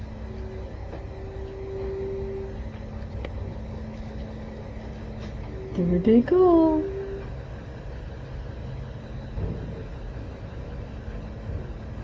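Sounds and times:
big garbage truck engine rumbling while collecting garbage: 0.0s - 12.0s
speech: 5.8s - 7.0s.

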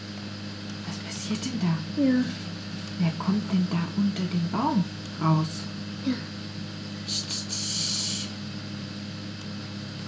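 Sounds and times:
low quiet hum: 0.0s - 10.0s
speech: 1.3s - 6.3s
voice imitating a snake's hiss: 7.0s - 8.4s.

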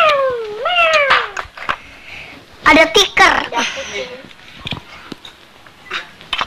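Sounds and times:
long cat meow: 0.0s - 1.4s
speech: 2.7s - 4.2s.

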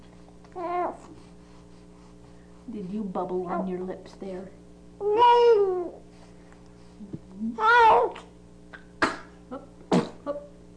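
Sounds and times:
faint steady hum: 0.0s - 10.7s
speech: 2.7s - 6.0s
baby cooing: 5.0s - 6.0s, 7.5s - 8.3s
baby sneezing: 8.8s - 10.2s.

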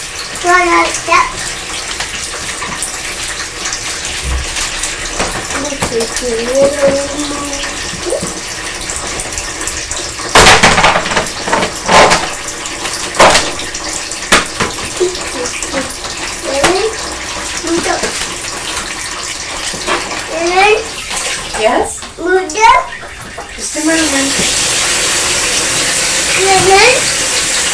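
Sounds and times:
tap running, water pouring and splashing into a container: 0.0s - 27.7s
speech: 0.4s - 1.4s, 6.0s - 8.3s.

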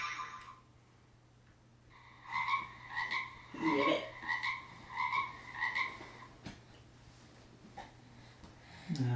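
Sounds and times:
frog croaking: 2.2s - 6.3s.

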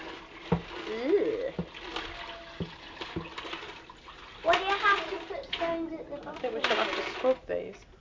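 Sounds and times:
water pouring from a jug: 0.0s - 7.4s.

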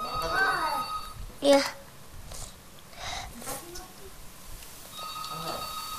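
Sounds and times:
telephone ringing with an electronic tone: 0.0s - 1.2s, 4.9s - 5.9s
speech: 1.4s - 1.8s.

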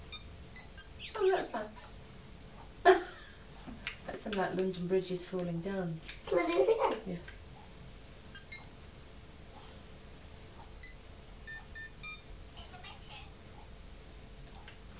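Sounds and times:
steady low hum: 0.0s - 14.9s
speech: 1.3s - 2.0s, 4.2s - 7.4s
electronic telephone keypad beeps pressed by a young boy: 10.8s - 12.2s.

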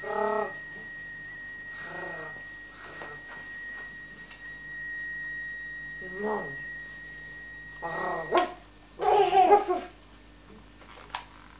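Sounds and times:
quiet steady hum: 0.0s - 11.5s
person playfully imitating a dog barking: 7.8s - 10.0s.

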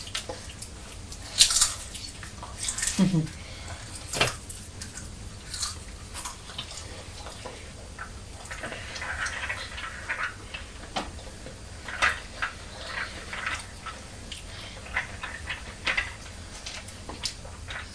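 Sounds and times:
low hum: 0.0s - 17.9s
person crunching on crisps: 1.1s - 6.9s.

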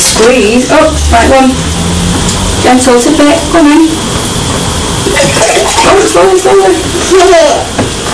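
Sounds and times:
speech: 0.2s - 1.7s, 2.6s - 8.0s
water running into a container: 5.0s - 7.7s.

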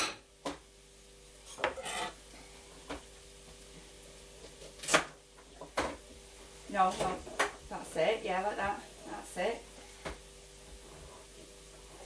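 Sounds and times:
faint steady hum: 0.0s - 12.0s
sharp peeler scraping a vegetable: 1.5s - 2.2s
speech: 6.8s - 7.3s, 7.9s - 9.7s.

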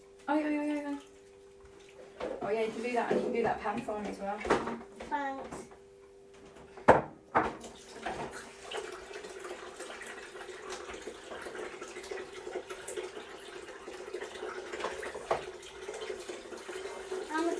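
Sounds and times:
speech: 0.3s - 0.6s, 2.5s - 5.7s
tap water running into drinking glass: 7.4s - 17.5s.

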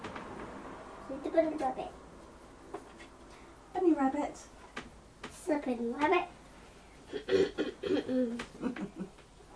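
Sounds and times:
speech: 1.3s - 2.0s, 4.0s - 4.6s, 5.5s - 6.4s, 7.1s - 9.2s
child clearing throat: 7.1s - 8.9s.

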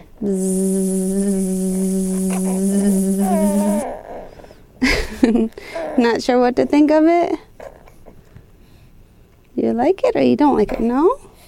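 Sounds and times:
voice imitating a buzzing bee: 0.0s - 4.0s
speech: 0.2s - 0.8s, 6.0s - 7.4s, 9.7s - 11.2s.

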